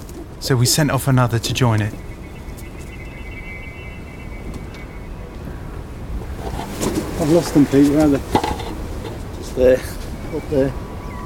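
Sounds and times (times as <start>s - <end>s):
wind gusting across a microphone outdoors: 0.0s - 11.2s
speech: 0.4s - 2.1s, 7.2s - 8.5s, 9.6s - 10.8s
faint thin tone: 1.9s - 5.8s.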